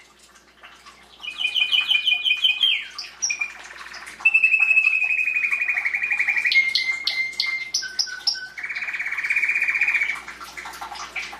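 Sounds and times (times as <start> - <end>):
canary song in tours: 1.2 - 10.3.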